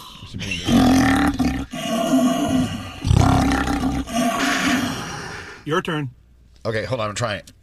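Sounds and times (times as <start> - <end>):
speech: 0.3 - 0.7, 5.7 - 7.6
person imitating a lion roar by snorting through an empty paper towel roll: 0.7 - 5.6.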